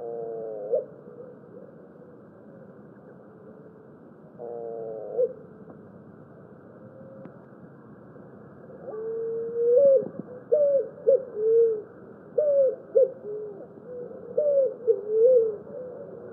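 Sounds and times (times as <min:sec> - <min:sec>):
Picazuro pigeon cooing: 0:00.0 - 0:01.3, 0:08.8 - 0:16.3.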